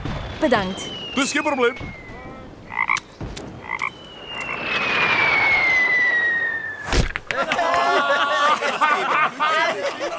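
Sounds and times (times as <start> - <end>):
loud blast: 0.0 - 7.2
cannon-like boom: 0.0 - 7.5
long slowly falling whistle of a flying projectile: 0.1 - 2.5, 3.9 - 7.2
speech: 0.4 - 2.0
laughter: 7.3 - 10.1.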